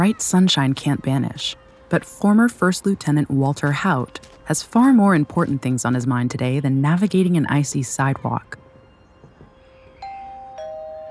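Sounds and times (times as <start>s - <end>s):
speech: 0.0s - 8.6s
two-tone doorbell chime at a single-story house in Roswell New Mexico: 10.0s - 11.0s.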